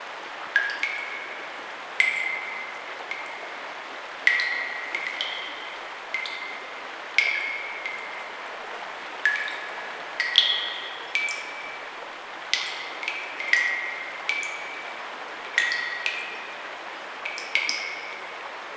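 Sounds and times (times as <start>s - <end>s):
water dripping: 0.0s - 18.7s.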